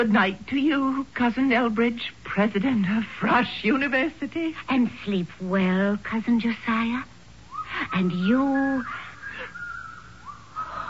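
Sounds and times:
speech: 0.0 - 7.1, 7.7 - 9.0
thin eerie wavering whistle: 7.5 - 10.8.

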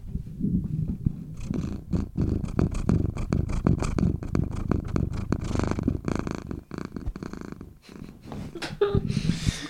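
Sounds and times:
cat purring: 0.2 - 9.6
cat sniffing and snuffling against the microphone: 0.7 - 8.4.

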